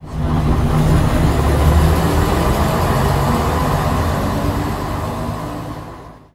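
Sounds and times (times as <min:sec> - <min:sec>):
Daimler CVG6 bus engine: 0:00.0 - 0:06.3.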